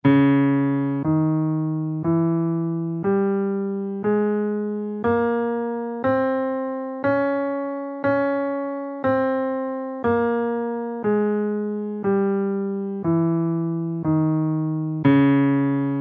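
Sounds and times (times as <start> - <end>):
guitar playing lydian flat three scale in C minor: 0.0 - 16.0.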